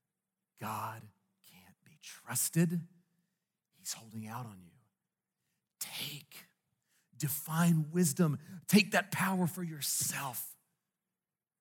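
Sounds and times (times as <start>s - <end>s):
speech: 0.6s - 1.2s, 2.0s - 3.0s, 3.9s - 4.7s, 5.8s - 6.5s, 7.2s - 10.5s
person whispering, imitating a sly tempting serpent: 0.6s - 2.6s, 3.8s - 4.6s, 5.8s - 6.6s, 9.9s - 10.6s.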